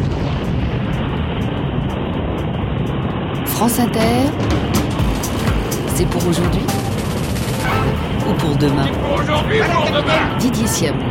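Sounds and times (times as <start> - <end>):
rocket engine ignition at launch: 0.0 - 11.0
speech: 3.6 - 4.7, 6.0 - 6.9, 7.8 - 11.0.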